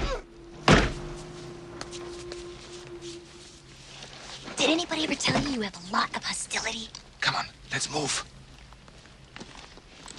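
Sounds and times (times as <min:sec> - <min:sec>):
heavy thud of a man knocking out a guard at a guard post: 0:00.0 - 0:01.4
low steady hum: 0:00.0 - 0:10.1
speech: 0:04.7 - 0:08.3.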